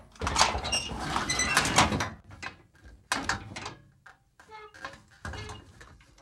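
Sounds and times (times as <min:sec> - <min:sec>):
metal grate squeaking open: 0:00.3 - 0:02.0, 0:04.5 - 0:05.7.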